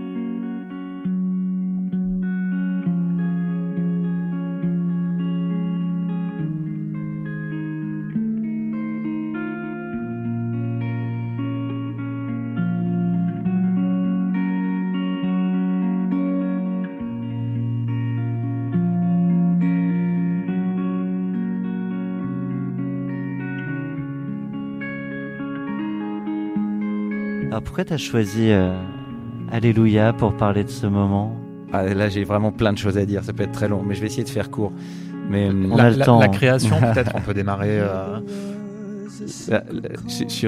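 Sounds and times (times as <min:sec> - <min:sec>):
slow electric guitar playing sustained chords live: 0:00.0 - 0:40.4
speech: 0:27.6 - 0:38.5, 0:39.2 - 0:40.4
laughter: 0:35.7 - 0:38.5.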